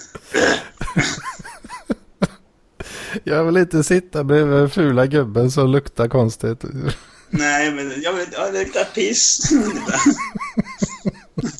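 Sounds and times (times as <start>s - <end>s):
person imitating a drunk clearing the throat: 0.0s - 1.3s
speech: 1.0s - 1.3s, 3.3s - 10.4s
laughter: 9.4s - 11.5s.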